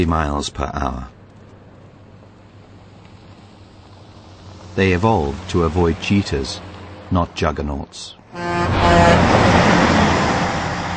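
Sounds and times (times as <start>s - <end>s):
speech: 0.0s - 1.2s, 4.8s - 9.4s
truck rumbling past with engine and road noise: 1.6s - 7.5s, 8.1s - 10.9s
brief tonal whine: 8.3s - 10.6s.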